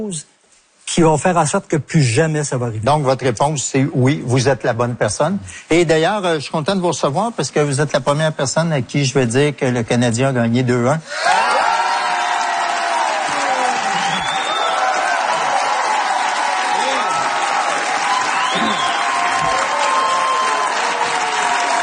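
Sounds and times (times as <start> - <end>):
speech: 0.0 - 11.7
audience applause: 11.1 - 21.8
crowd cheering and whooping: 11.1 - 21.8.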